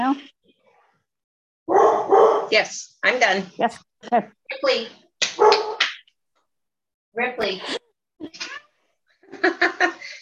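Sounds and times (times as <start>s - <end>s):
speech: 0.0s - 0.4s, 2.5s - 5.6s, 7.2s - 8.6s, 9.3s - 10.2s
high-pitched yelping hound bark: 1.7s - 2.6s, 5.4s - 5.8s.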